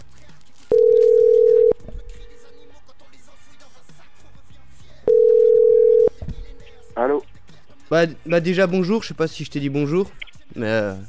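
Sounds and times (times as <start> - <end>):
telephone ringback tone from an outgoing call: 0.7 - 2.7, 5.1 - 6.2
speech: 7.9 - 11.0.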